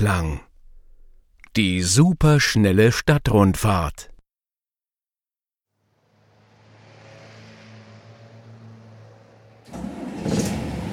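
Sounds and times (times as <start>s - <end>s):
speech: 0.0s - 0.5s, 1.6s - 4.1s
large bus engine idling and revving: 5.9s - 10.9s.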